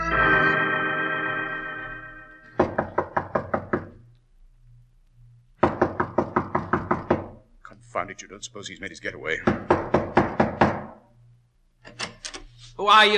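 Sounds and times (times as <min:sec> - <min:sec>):
sustained musical chord: 0:00.0 - 0:02.6
rapid sharp knocking on a door: 0:02.6 - 0:04.0, 0:05.6 - 0:07.4, 0:09.4 - 0:11.0
speech: 0:08.0 - 0:10.0, 0:12.8 - 0:13.1.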